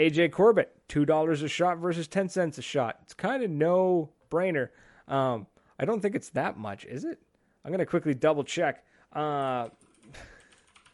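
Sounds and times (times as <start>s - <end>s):
speech: 0.0s - 10.3s
loud typing on a computer keyboard: 9.5s - 10.9s.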